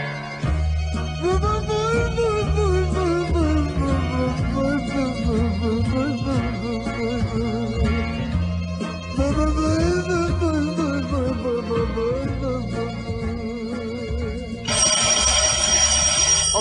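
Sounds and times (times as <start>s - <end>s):
music: 0.0s - 16.3s
telephone bell ringing: 14.7s - 16.6s.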